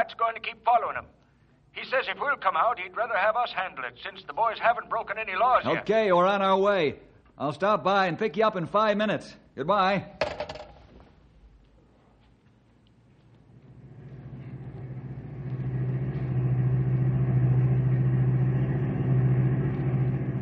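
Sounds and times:
speech: 0:00.0 - 0:01.2, 0:01.8 - 0:10.6
car engine driving: 0:13.6 - 0:20.4.

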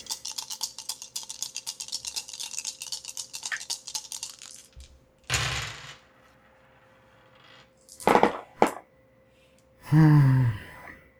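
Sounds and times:
dice rattling in a cup or hand: 0:00.0 - 0:08.8
person giving a short voiced gasp or exclamation: 0:09.8 - 0:11.1.

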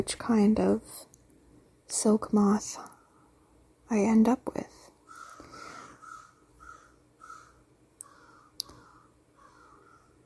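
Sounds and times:
speech: 0:00.0 - 0:01.1, 0:01.9 - 0:02.9, 0:03.9 - 0:04.8
crows cawing outdoors: 0:05.1 - 0:10.2
sharp clicks: 0:08.0 - 0:08.8.

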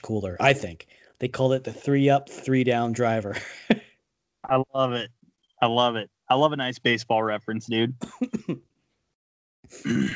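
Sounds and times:
speech: 0:00.0 - 0:03.8, 0:04.5 - 0:08.7, 0:09.6 - 0:10.1
laughter: 0:03.0 - 0:03.8, 0:04.5 - 0:05.0, 0:05.6 - 0:08.6
person clearing throat and coughing: 0:03.3 - 0:03.8, 0:07.8 - 0:08.6, 0:09.8 - 0:10.1.

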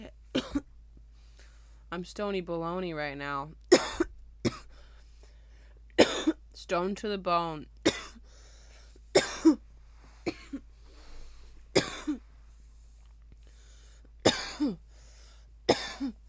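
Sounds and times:
harsh coughs: 0:00.4 - 0:00.7, 0:03.7 - 0:04.8, 0:06.0 - 0:06.4, 0:07.8 - 0:08.2, 0:09.1 - 0:09.6, 0:10.2 - 0:10.7, 0:11.7 - 0:12.2, 0:14.2 - 0:14.8, 0:15.7 - 0:16.2
quiet breathing: 0:01.1 - 0:01.9, 0:04.7 - 0:05.9, 0:08.2 - 0:09.1, 0:09.7 - 0:14.2, 0:14.8 - 0:16.2
speech: 0:01.9 - 0:03.6, 0:06.7 - 0:07.8.

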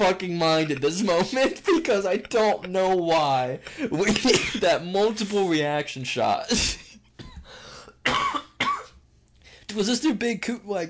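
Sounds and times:
speech: 0:00.0 - 0:06.8, 0:09.7 - 0:10.8
harsh hacking coughing: 0:03.8 - 0:04.7, 0:06.5 - 0:09.0.

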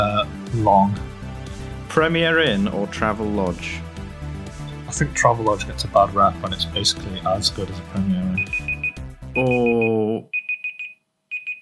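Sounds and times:
speech: 0:00.0 - 0:01.1, 0:01.9 - 0:03.8, 0:04.9 - 0:08.7, 0:09.4 - 0:10.3
quiz timer alarm buzzy harmonic electronic tone: 0:08.4 - 0:09.8
quiz timer rapid high beeps: 0:08.4 - 0:11.5.

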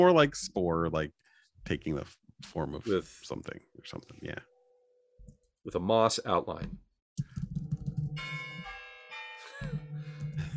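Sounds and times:
speech: 0:00.0 - 0:04.5, 0:05.6 - 0:07.3
church bells chiming for new year: 0:08.2 - 0:10.5.

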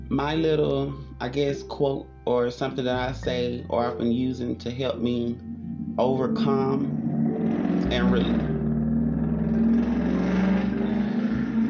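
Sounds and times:
speech: 0:00.1 - 0:08.5
car engine humming: 0:05.0 - 0:11.6.

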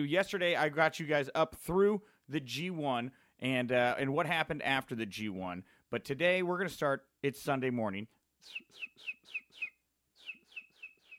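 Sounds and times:
speech: 0:00.0 - 0:09.4
homemade imitation of bird chirping with whistly tweets: 0:08.4 - 0:11.1.

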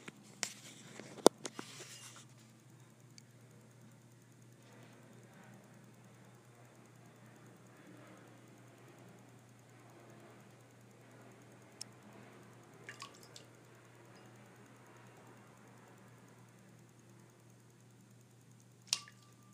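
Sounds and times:
steady low hum: 0:00.0 - 0:19.5
pet splashing water in its water bowl: 0:12.8 - 0:13.5, 0:18.9 - 0:19.4.

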